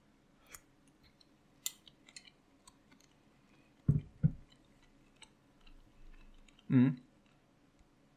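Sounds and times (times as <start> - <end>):
person chewing a bite of crunchy food: 1.7 - 6.7
speech: 6.7 - 7.0.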